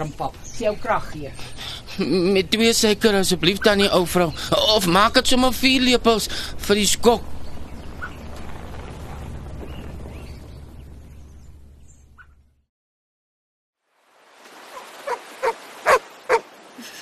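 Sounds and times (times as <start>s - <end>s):
speech: 0.0s - 7.3s
rumbling noise: 1.4s - 12.6s
dog barking short sharp barks: 15.1s - 16.4s.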